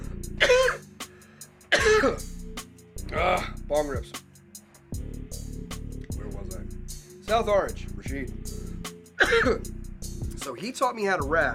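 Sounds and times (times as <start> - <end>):
harsh raspy coughs: 0.3 - 0.9, 1.7 - 2.4, 9.2 - 9.8
throaty clearing sounds: 0.4 - 0.8, 1.7 - 2.3, 9.2 - 9.7
speech: 2.0 - 2.3, 3.1 - 4.2, 7.3 - 8.6, 9.2 - 9.7, 10.5 - 11.5.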